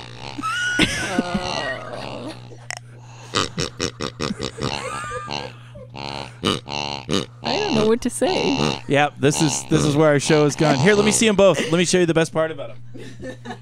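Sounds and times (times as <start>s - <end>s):
faint steady hum: 0.0s - 13.6s
laughter: 0.3s - 6.5s, 7.6s - 13.6s
speech: 0.8s - 1.6s, 8.0s - 13.6s
squeaky toy pig oinking: 3.4s - 11.3s.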